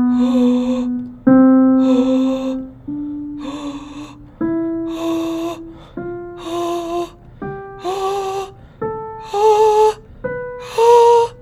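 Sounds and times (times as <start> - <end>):
ingressive vocalization: 0.2 - 1.0, 1.8 - 2.6, 3.4 - 4.2, 4.9 - 7.2, 7.8 - 8.6, 9.2 - 10.0, 10.6 - 11.4.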